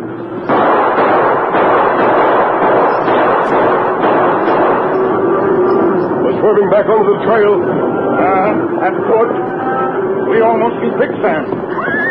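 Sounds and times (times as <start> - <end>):
loud continuous roar of a cattle stampede: 0.0 - 12.0
repeated gunshots during a cattle stampede on a western trail: 0.4 - 8.0
speech: 6.5 - 9.6, 10.3 - 11.6.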